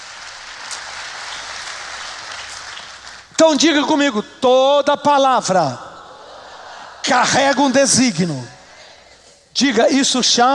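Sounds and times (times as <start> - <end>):
large crowd applauding loudly: 0.0 - 3.4
speech: 3.4 - 5.9, 7.0 - 8.6, 9.6 - 10.5.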